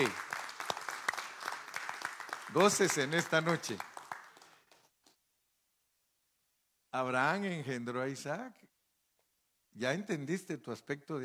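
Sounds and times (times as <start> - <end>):
speech: 0.0 - 0.2, 2.5 - 3.9, 6.9 - 8.8, 9.8 - 11.2
audience applauding: 0.0 - 4.9.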